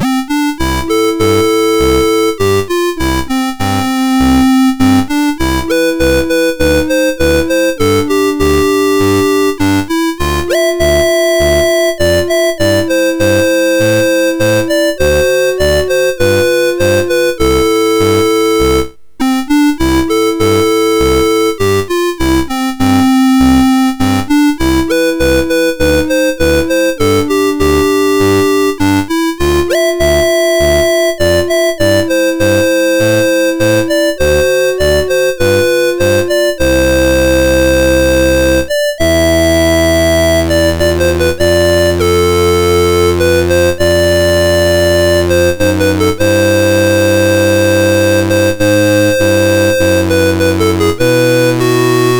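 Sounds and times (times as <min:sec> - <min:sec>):
MOS6581R4 chip synth melody: 0:00.0 - 0:52.1.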